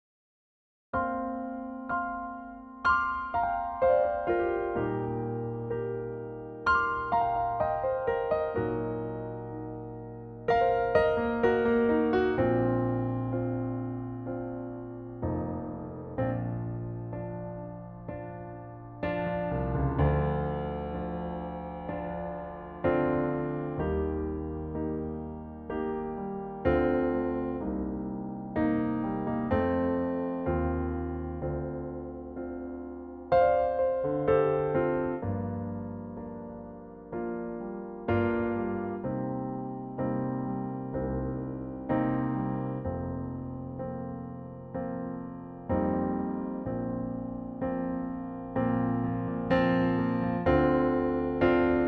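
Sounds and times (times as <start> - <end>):
piano: 0.9 - 51.8.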